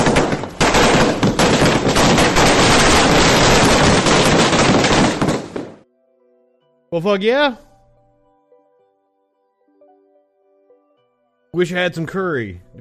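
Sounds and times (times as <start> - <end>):
fireworks exploding from a small display: 0.0 - 5.8
speech: 6.9 - 7.7, 11.6 - 12.8.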